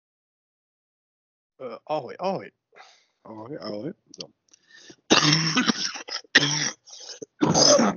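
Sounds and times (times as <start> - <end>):
speech: 1.6 - 7.9
loud raspy coughs: 4.9 - 7.9
harsh throat clearing: 5.1 - 7.9.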